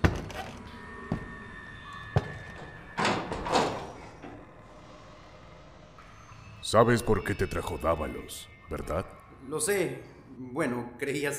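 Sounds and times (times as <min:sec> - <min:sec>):
door scraping as it settles closed: 0:02.2 - 0:04.8
speech: 0:06.7 - 0:11.3.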